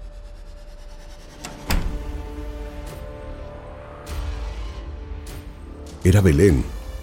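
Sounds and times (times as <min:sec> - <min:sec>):
door latch click: 0:01.4 - 0:02.2
speech: 0:06.0 - 0:06.8.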